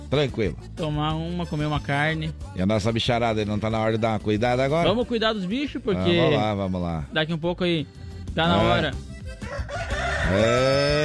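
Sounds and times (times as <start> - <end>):
speech: 0.1 - 11.0
rooster crowing: 9.4 - 11.0.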